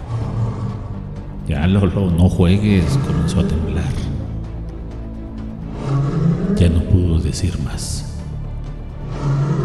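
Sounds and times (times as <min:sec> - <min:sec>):
deep menacing animal roar: 0:00.0 - 0:01.1, 0:02.6 - 0:04.2, 0:05.6 - 0:07.0, 0:09.0 - 0:09.6
speech: 0:01.5 - 0:04.1, 0:06.6 - 0:08.1.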